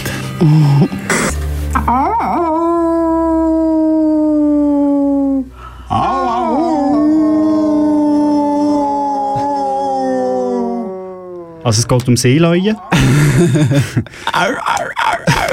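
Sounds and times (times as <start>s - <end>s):
speech: 0.4s - 1.2s, 11.7s - 14.8s
wolf howling in long sustained calls: 1.8s - 11.7s
laughter: 12.9s - 15.5s.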